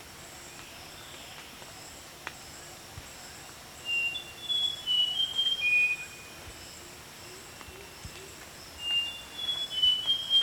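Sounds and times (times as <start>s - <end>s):
rusty mouse-warbler high whistled song: 3.8s - 6.4s, 8.8s - 10.4s.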